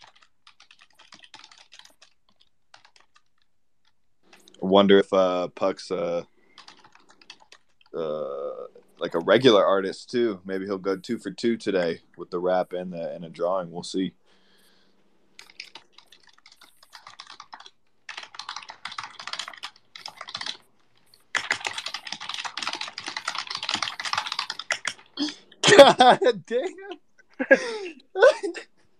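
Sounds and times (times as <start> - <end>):
loud typing on a computer keyboard: 0.0 - 4.6, 6.5 - 9.6, 15.4 - 25.3
speech: 4.6 - 6.3, 8.0 - 8.4, 9.0 - 14.2, 26.0 - 28.7.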